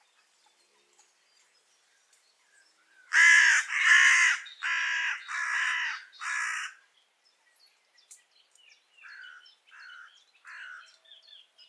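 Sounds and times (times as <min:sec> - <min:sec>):
carrion crow cawing: 0:03.1 - 0:06.8, 0:09.1 - 0:10.9.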